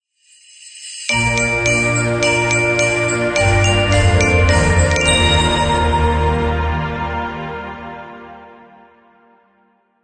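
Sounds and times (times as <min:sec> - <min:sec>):
Christmas logo jingle: 0:00.2 - 0:08.2.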